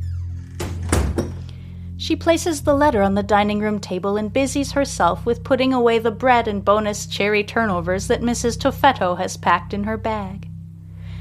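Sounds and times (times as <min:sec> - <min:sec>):
door shutting with a solid thud: 0:00.0 - 0:01.5
low steady hum: 0:00.0 - 0:11.1
speech: 0:02.0 - 0:10.5.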